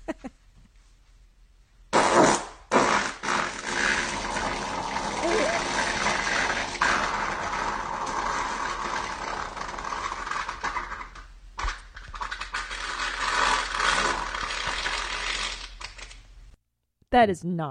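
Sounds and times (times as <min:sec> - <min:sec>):
loud drawn-out fart: 0:01.9 - 0:15.8
speech: 0:17.2 - 0:17.7.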